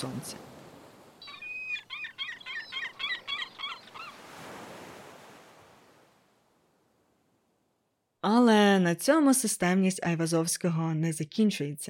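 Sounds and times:
speech: 0:00.0 - 0:00.5, 0:08.2 - 0:11.8
ocean surf waves breaking: 0:00.0 - 0:01.9, 0:02.8 - 0:07.5
chirping bird or frog calls: 0:01.2 - 0:04.3.

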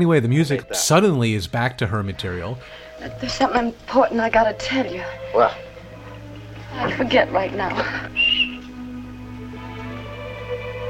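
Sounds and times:
speech: 0:00.0 - 0:05.7, 0:06.8 - 0:08.2
low steady droning background: 0:02.0 - 0:10.8
shrill whistle blast: 0:08.1 - 0:08.7.

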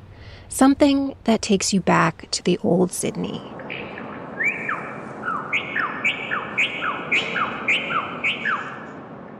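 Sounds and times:
soft hiss: 0:00.0 - 0:09.1
speech: 0:00.5 - 0:03.6
bird songs from a sound sculpture in an alley: 0:03.2 - 0:09.1.

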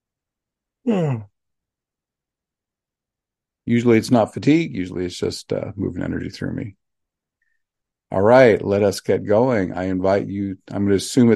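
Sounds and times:
speech: 0:00.8 - 0:01.3, 0:03.7 - 0:06.8, 0:08.1 - 0:11.3
man yawning: 0:00.8 - 0:01.4.

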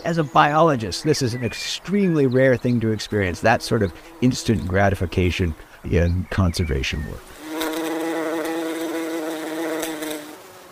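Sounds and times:
speech: 0:00.0 - 0:07.3
bumblebee buzzing: 0:00.8 - 0:01.6, 0:02.4 - 0:06.0, 0:07.2 - 0:10.7.

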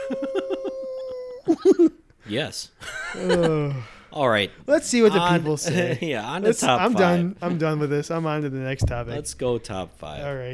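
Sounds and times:
person imitating a werewolf howl: 0:00.0 - 0:01.6
rhythmic laughter: 0:00.0 - 0:02.0, 0:02.8 - 0:03.8, 0:05.0 - 0:07.0
speech: 0:01.5 - 0:10.5.

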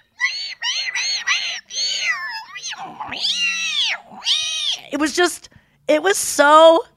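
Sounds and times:
voice mimicking whale song through a microphone in the water: 0:00.0 - 0:05.0
speech: 0:04.9 - 0:06.9.

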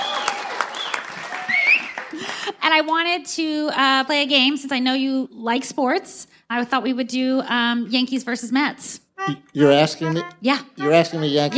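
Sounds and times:
audience whoops and cheers: 0:00.0 - 0:02.2
live audience applauding: 0:00.0 - 0:02.5
speech: 0:02.7 - 0:11.5.

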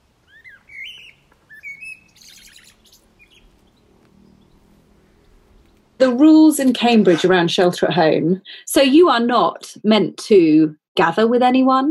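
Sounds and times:
birds chirping and singing in a garden: 0:00.2 - 0:06.2
speech: 0:06.0 - 0:11.8.

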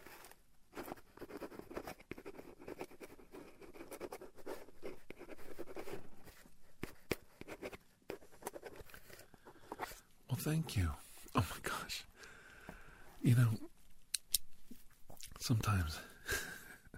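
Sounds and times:
pen scratching across the back of cardboard signing an autograph: 0:00.0 - 0:10.0
speech: 0:10.4 - 0:12.1, 0:13.2 - 0:13.7, 0:15.5 - 0:16.4.

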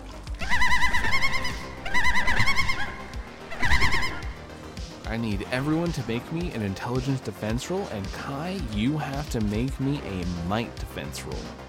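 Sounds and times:
bird giving wavering trilling calls: 0:00.4 - 0:04.5
speech: 0:05.2 - 0:11.6.

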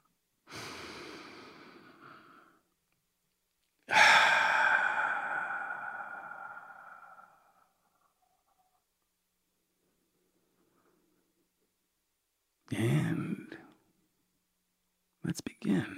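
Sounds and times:
deep breath: 0:00.5 - 0:02.7, 0:03.9 - 0:07.8
speech: 0:12.7 - 0:13.2, 0:15.4 - 0:15.9.

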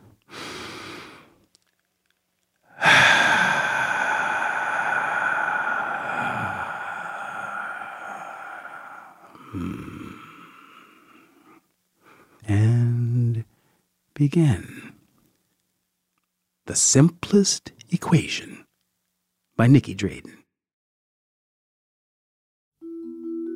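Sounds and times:
deep breath: 0:00.2 - 0:01.4, 0:02.6 - 0:12.4, 0:13.5 - 0:13.9
speech: 0:14.2 - 0:14.7, 0:16.7 - 0:18.5, 0:19.6 - 0:20.4.

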